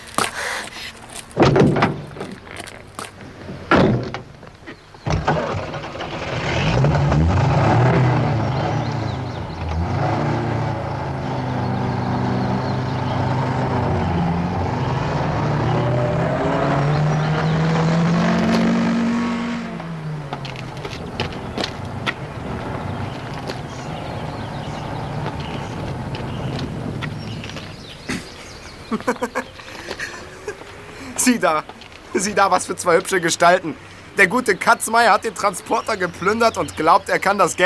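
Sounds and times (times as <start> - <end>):
sharp knocks and door-like thuds: 1.4 - 2.3, 3.7 - 4.4
car engine starting and revving as the vehicle pulls away: 5.1 - 29.2
laughter: 28.1 - 31.3
speech: 31.3 - 37.6.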